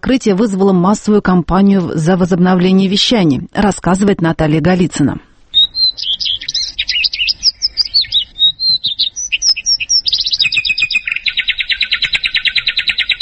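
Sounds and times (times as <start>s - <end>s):
speech: 0.1s - 5.3s
birdsong with chirps, warbles and buzzing trill: 5.4s - 13.1s.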